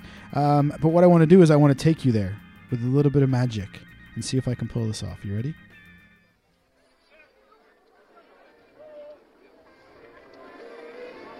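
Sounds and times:
speech: 0:00.4 - 0:05.7
theme park crowd murmur of chatter and babble: 0:06.9 - 0:11.3.

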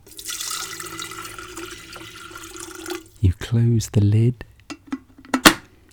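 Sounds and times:
water pouring into a metal kettle: 0:00.0 - 0:03.2
speech: 0:03.5 - 0:04.5.

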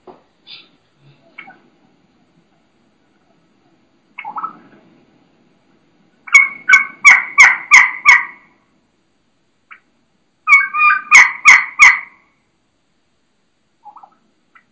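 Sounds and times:
hen turkey raspy yelps in a kee-kee run: 0:01.4 - 0:01.6, 0:04.2 - 0:04.7, 0:06.2 - 0:08.6, 0:09.7 - 0:12.3, 0:13.8 - 0:14.7.

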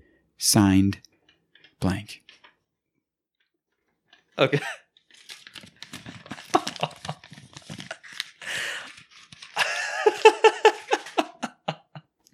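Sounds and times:
speech: 0:00.4 - 0:01.1, 0:01.8 - 0:02.3, 0:04.4 - 0:04.8
giggle-like sound: 0:04.4 - 0:04.9, 0:06.3 - 0:08.1, 0:09.6 - 0:12.1
sheet of paper crumpled by hand: 0:04.9 - 0:11.5.

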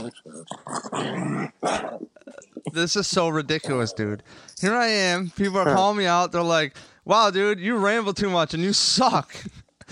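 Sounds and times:
speech: 0:00.0 - 0:01.9, 0:02.8 - 0:09.9
dog growling and whimpering: 0:00.0 - 0:02.2.

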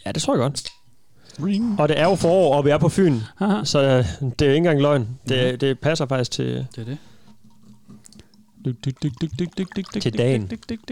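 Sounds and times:
speech: 0:00.0 - 0:00.8, 0:01.4 - 0:07.1, 0:08.6 - 0:10.9
beer glugging out of a bottle into a glass: 0:06.7 - 0:10.9.

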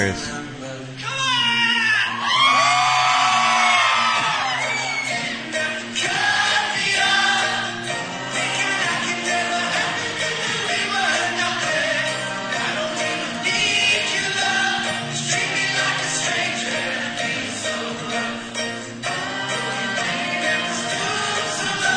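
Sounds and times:
speech: 0:00.0 - 0:00.5
live concert music: 0:00.0 - 0:21.9
crowd cheering and yelling: 0:01.0 - 0:05.9
large crowd singing at a concert: 0:02.6 - 0:21.9.

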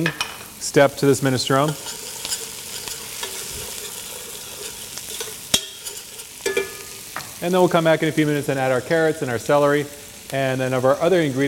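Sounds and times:
speech: 0:00.0 - 0:02.0, 0:07.4 - 0:11.4
onions sweating in butter and olive oil in a pot: 0:00.0 - 0:11.4
stirring clicks and scrapes in a pot: 0:01.6 - 0:06.6.

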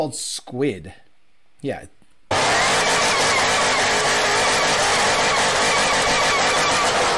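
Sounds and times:
speech: 0:00.0 - 0:01.0, 0:01.6 - 0:02.0
Ford GT500 engine revving at high revs during a burnout in Detroit: 0:02.3 - 0:07.1
tires screeching during a burnout: 0:02.3 - 0:07.1.

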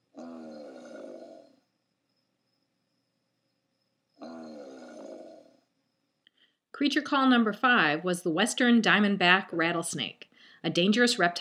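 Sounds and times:
American alligator bellowing deep rumbling roars: 0:00.0 - 0:01.6, 0:04.2 - 0:05.6
speech: 0:06.8 - 0:11.3.

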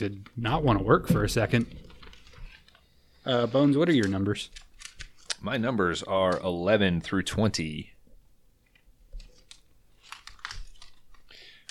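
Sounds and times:
speech: 0:00.0 - 0:01.9, 0:03.2 - 0:04.6, 0:05.4 - 0:07.9
crisp paper rustling and crinkling: 0:01.4 - 0:05.4, 0:09.1 - 0:11.6.

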